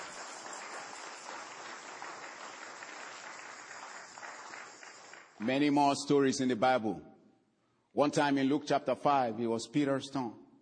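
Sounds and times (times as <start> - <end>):
crowd clapping: 0.0 - 5.8
speech: 5.4 - 7.1, 8.0 - 10.4.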